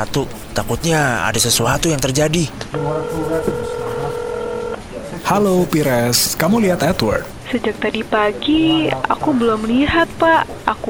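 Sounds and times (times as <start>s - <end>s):
speech: 0.0s - 3.8s, 5.1s - 10.8s
murmur of noise: 0.0s - 10.8s
telephone touch tone dialed to call a housekeeper: 2.7s - 7.3s.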